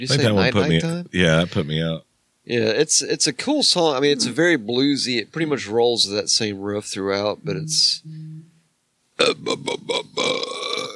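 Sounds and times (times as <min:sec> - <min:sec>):
speech: 0:00.0 - 0:08.3, 0:09.2 - 0:10.8
loud rumbling burp: 0:09.2 - 0:10.9.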